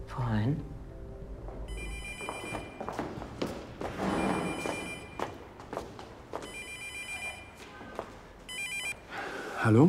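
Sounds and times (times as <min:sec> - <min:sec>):
speech: 0:00.1 - 0:00.7, 0:09.7 - 0:09.8
footstep-like knocks: 0:01.4 - 0:06.5
telephone ringing: 0:01.7 - 0:03.0, 0:04.0 - 0:05.3, 0:06.4 - 0:07.6, 0:08.5 - 0:09.0.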